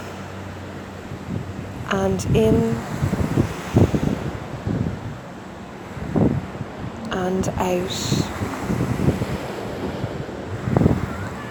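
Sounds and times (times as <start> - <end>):
ocean waves washing against the shore: 0.0 - 11.4
speech: 1.9 - 3.1, 7.3 - 8.3.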